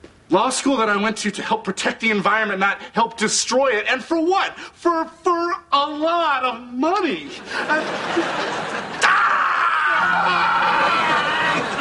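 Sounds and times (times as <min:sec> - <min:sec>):
speech: 0:00.3 - 0:09.0, 0:10.0 - 0:11.2
laughter: 0:07.2 - 0:11.7
man screaming in frustration: 0:09.0 - 0:11.7.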